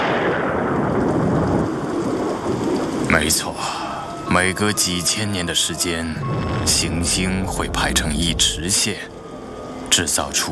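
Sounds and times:
heavy low thunder rumbling: 0.0s - 4.5s, 5.6s - 9.7s
constant rain-like hiss: 0.0s - 10.4s
speech: 3.2s - 3.7s, 4.3s - 9.2s, 9.9s - 10.4s.

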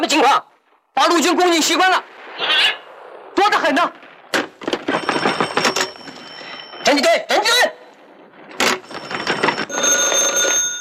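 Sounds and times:
speech: 0.0s - 2.8s, 3.4s - 4.0s, 6.9s - 7.8s
telephone ringing with bright bell-like tones: 4.7s - 7.2s, 8.4s - 10.7s.

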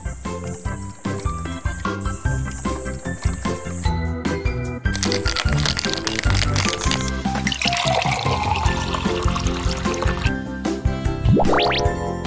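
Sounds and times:
steady music: 0.0s - 12.2s
ice cubes clinking into a glass: 4.9s - 10.3s.

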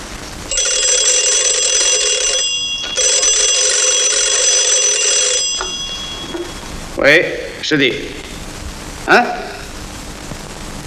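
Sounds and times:
telephone ringing: 0.5s - 6.8s
speech: 7.0s - 8.3s, 9.1s - 9.5s.

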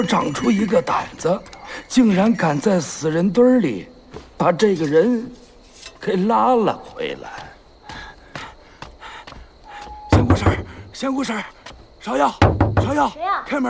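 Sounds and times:
speech: 0.0s - 5.4s, 6.0s - 7.5s, 11.0s - 13.6s
sharp knocks on a door: 10.0s - 10.8s, 12.3s - 13.1s.

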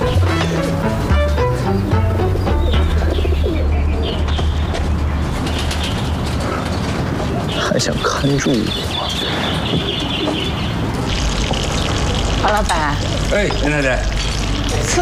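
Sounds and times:
pigeons cooing: 0.0s - 12.4s
birds chirping: 0.0s - 15.0s
speech: 7.8s - 8.9s, 9.7s - 9.9s, 12.4s - 14.1s, 14.9s - 15.0s.

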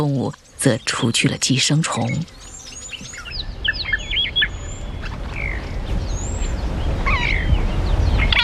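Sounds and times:
speech: 0.0s - 2.4s
oxpeckers calling in buzzy chirps and trills: 0.0s - 8.4s
low rumble of outdoor noise: 2.2s - 8.4s.

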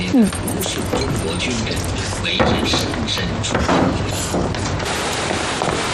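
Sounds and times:
people talking: 0.0s - 4.6s
smaller knocks and rattles: 0.0s - 5.9s
home's door swinging shut with a solid thump: 2.4s - 4.7s.

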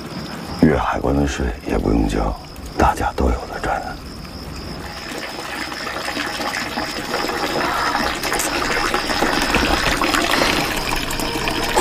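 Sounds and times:
speech: 0.7s - 4.0s
water running from an open tap: 4.8s - 11.8s.

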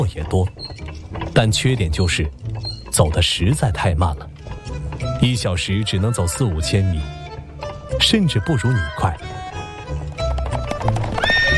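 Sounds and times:
speech: 0.0s - 0.6s, 1.4s - 7.2s, 8.0s - 9.4s
horse hooves clip-clopping: 0.0s - 11.5s
horse neighing: 5.2s - 7.0s, 8.2s - 9.3s, 10.9s - 11.5s.

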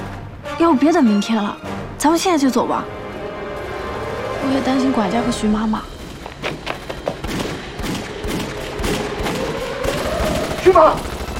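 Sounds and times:
speech: 0.6s - 3.0s, 4.4s - 5.9s, 10.7s - 11.2s
dense barrage of gunfire crackling: 6.0s - 11.3s.

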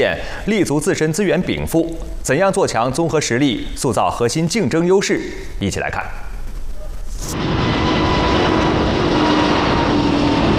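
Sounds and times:
speech: 0.0s - 6.3s, 7.2s - 7.6s
turbofan engine roaring with faint whining tones: 7.2s - 10.5s.

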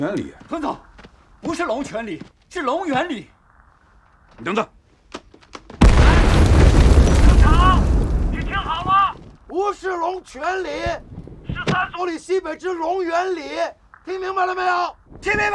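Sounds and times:
speech: 0.0s - 3.4s, 4.4s - 4.8s, 9.5s - 15.5s
artillery fire explosions: 5.8s - 9.4s.

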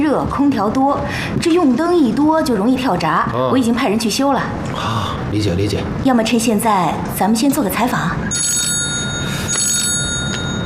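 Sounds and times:
steady hum: 0.0s - 10.6s
speech: 0.1s - 8.3s
telephone ringing in short bright trilling bursts: 8.3s - 10.6s.

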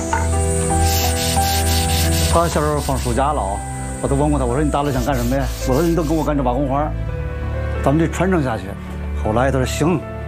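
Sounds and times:
brick corners being ground smooth to 90-degree angles: 0.1s - 3.2s, 4.8s - 6.3s
speech: 2.4s - 7.1s, 7.8s - 10.1s.

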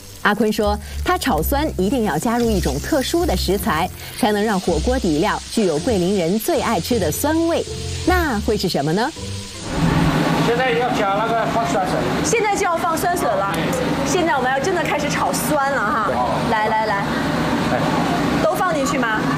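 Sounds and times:
dried chili powder sizzling in a wok for a hot pot base: 0.0s - 19.2s.

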